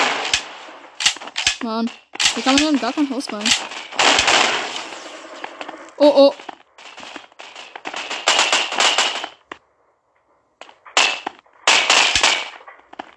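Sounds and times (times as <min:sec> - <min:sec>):
automatic gunfire in a video shooting game: 0:00.0 - 0:01.6, 0:02.2 - 0:05.6, 0:06.8 - 0:09.5, 0:10.9 - 0:12.6
speech: 0:01.6 - 0:04.5, 0:06.0 - 0:06.5.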